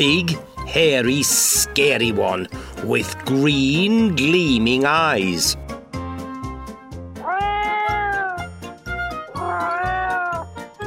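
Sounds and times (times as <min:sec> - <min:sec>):
speech: 0:00.0 - 0:05.6
rhythmic music: 0:00.0 - 0:10.8
kitten meowing: 0:07.2 - 0:08.5, 0:09.3 - 0:10.5.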